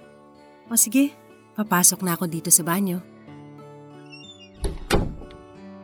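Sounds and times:
speech: 0.7s - 3.1s
door being shut by someone leaving: 4.2s - 5.4s.

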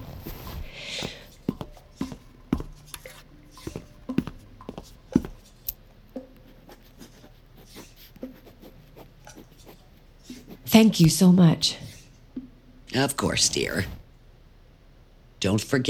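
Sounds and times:
pen writing down a phone number: 1.6s - 5.5s, 6.2s - 11.2s
speech: 10.8s - 11.8s, 13.0s - 14.0s, 15.4s - 15.8s.

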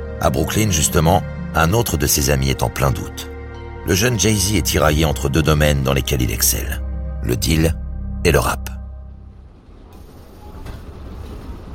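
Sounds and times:
speech: 0.2s - 8.7s
commuter train rolling along the rails: 9.0s - 11.7s.

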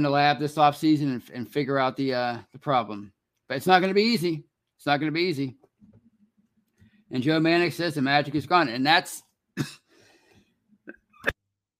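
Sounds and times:
speech: 0.0s - 5.6s, 7.1s - 9.8s
person coughing: 9.6s - 10.0s
breathy sounds: 9.8s - 10.6s.

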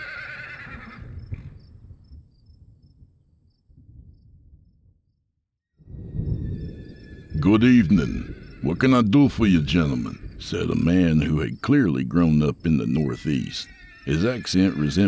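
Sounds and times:
horses whinnying and snorting: 0.0s - 1.5s, 7.1s - 11.3s, 12.8s - 15.0s
faint insects chirping: 1.0s - 4.8s, 5.9s - 15.0s
speech: 7.4s - 15.0s.

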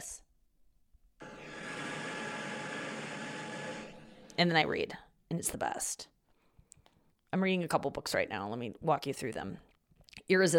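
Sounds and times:
white noise machine running: 1.2s - 4.1s
speech: 4.4s - 6.1s, 7.3s - 10.5s.

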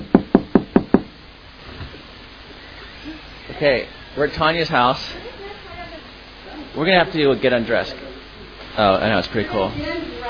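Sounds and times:
knocking on a wooden door: 0.0s - 1.1s
speech: 3.6s - 5.3s, 6.8s - 8.1s, 8.8s - 10.2s.

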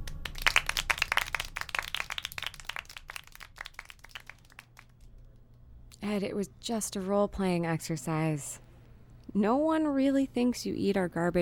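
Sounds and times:
small audience applause: 0.0s - 5.0s
speech: 6.0s - 8.6s, 9.3s - 11.4s.

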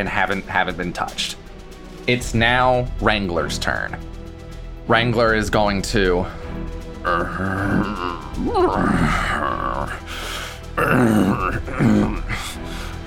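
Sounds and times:
speech: 0.0s - 1.4s, 2.1s - 4.2s, 4.9s - 12.4s
voice imitating zombie groans and growls: 7.0s - 10.1s, 10.8s - 12.5s.

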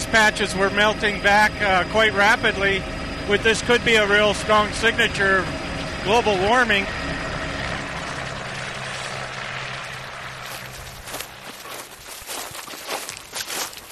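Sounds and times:
helicopter rotor drone while landing by an ancient ice patch: 0.0s - 13.9s
speech: 0.1s - 7.0s
crunching footsteps of people scrambling over to an ice patch: 8.0s - 13.9s.

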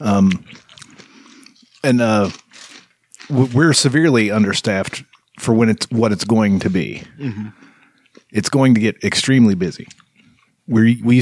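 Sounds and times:
speech: 0.0s - 0.6s, 1.8s - 2.4s, 3.3s - 7.7s, 8.3s - 10.0s, 10.7s - 11.2s
chewing mouth noises: 0.2s - 3.6s, 7.6s - 8.4s, 9.8s - 10.6s.

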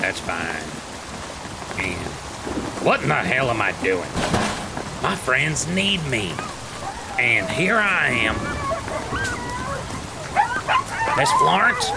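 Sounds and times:
speech: 0.1s - 1.0s, 1.8s - 6.5s, 7.2s - 8.6s, 10.7s - 11.9s
dog howling: 6.4s - 11.9s.

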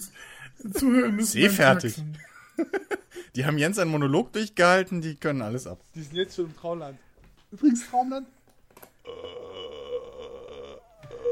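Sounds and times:
speech: 0.0s - 8.4s
laughter: 2.1s - 3.2s
person forcing out a long gravelly burp-like vocal sound: 9.0s - 11.3s.

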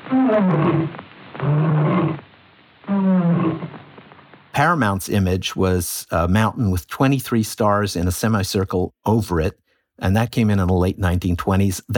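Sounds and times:
lion roar from a film studio logo: 0.0s - 2.2s, 2.9s - 3.8s
speech: 0.1s - 2.2s, 4.6s - 11.9s.

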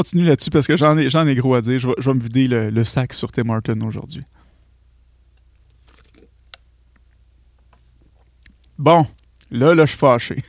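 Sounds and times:
speech: 0.0s - 4.4s, 8.8s - 10.4s
person sipping coffee: 4.3s - 9.6s
mouth clicks: 4.4s - 9.6s
swallowing: 4.4s - 9.6s.

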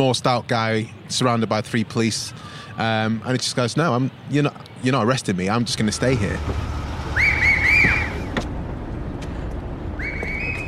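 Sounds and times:
speech: 0.0s - 6.8s
street and traffic noise: 0.0s - 10.6s
shrill warbling warning whistle blasts: 7.1s - 8.3s, 10.0s - 10.6s.

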